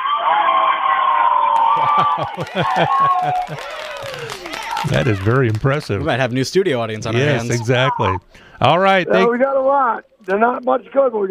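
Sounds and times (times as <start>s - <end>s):
group of about 40 people yelling and shouting: 0.0s - 5.3s
laughter: 1.6s - 8.2s
speech: 1.8s - 11.2s.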